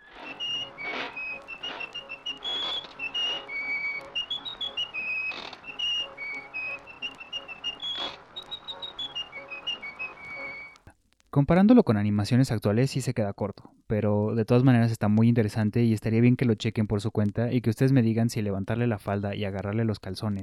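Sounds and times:
jaunty cartoon tune whistled: 0.0s - 10.9s
speech: 11.4s - 20.4s.

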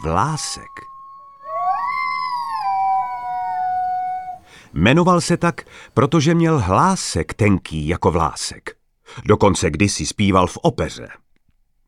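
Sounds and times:
speech: 0.0s - 0.9s, 4.7s - 11.2s
wolf howling: 0.0s - 4.6s.

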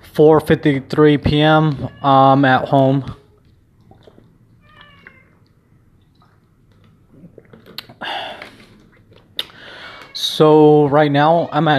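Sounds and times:
speech: 0.2s - 3.2s, 10.2s - 11.7s
cat meowing at home: 1.7s - 2.4s, 4.6s - 5.4s, 9.8s - 11.7s.

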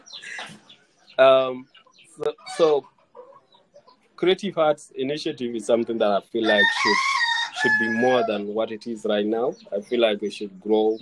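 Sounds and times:
chicken clucking: 0.0s - 4.4s, 5.4s - 11.0s
speech: 1.2s - 2.9s, 4.2s - 11.0s.

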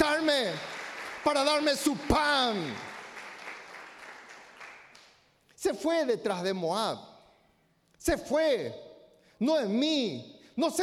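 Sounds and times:
crowd of many hands clapping: 0.0s - 5.2s
speech: 0.5s - 2.9s, 5.6s - 7.1s, 8.0s - 8.8s, 9.4s - 10.8s.

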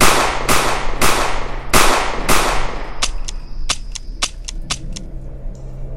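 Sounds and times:
handgun being emptied in rapid gunshots: 0.0s - 4.5s.

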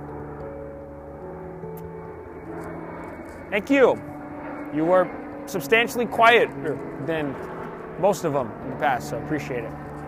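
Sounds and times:
jet airplane engine roaring overhead on a cold night: 0.0s - 10.0s
speech: 3.5s - 4.1s, 4.7s - 9.8s.

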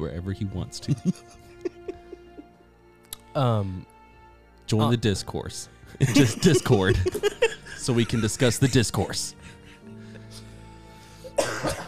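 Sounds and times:
speech: 0.0s - 1.5s, 3.4s - 3.9s, 4.7s - 9.6s
laughter: 0.8s - 2.5s, 6.0s - 10.3s
person coughing: 11.4s - 11.8s.

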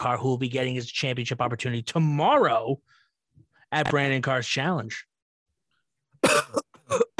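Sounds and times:
speech: 0.0s - 3.0s, 3.7s - 5.1s, 6.2s - 7.0s
person coughing: 6.2s - 7.1s.

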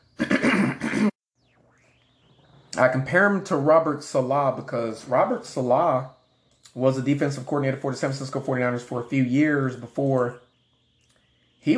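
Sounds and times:
throat clearing: 0.2s - 1.2s
speech: 2.8s - 6.2s, 6.8s - 10.4s.

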